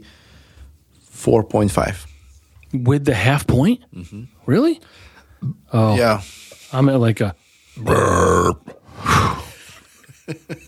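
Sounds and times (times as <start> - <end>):
speech: 1.2 - 2.1, 2.7 - 9.1, 10.3 - 10.6
breathy vocal sound: 7.8 - 9.6
person burping after drinking beer: 7.8 - 9.6.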